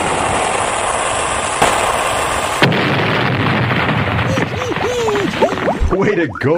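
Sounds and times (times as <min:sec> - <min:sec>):
explosion after a shot fired at a ship: 0:00.0 - 0:06.1
high warbling tones: 0:04.2 - 0:06.5.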